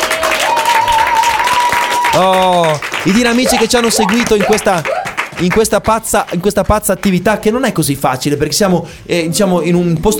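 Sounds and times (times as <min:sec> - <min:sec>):
group clapping at an outdoor camp activity: 0:00.0 - 0:07.4
speech: 0:02.2 - 0:10.1.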